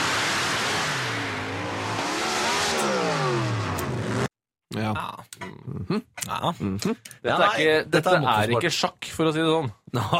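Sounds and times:
big-engined motorsport car engine revving hard: 0.0 - 4.3
speech: 4.8 - 10.1.

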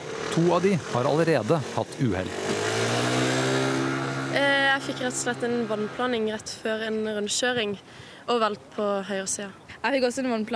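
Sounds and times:
moped engine revving: 0.0 - 6.5
speech: 0.4 - 3.3, 4.4 - 10.5.

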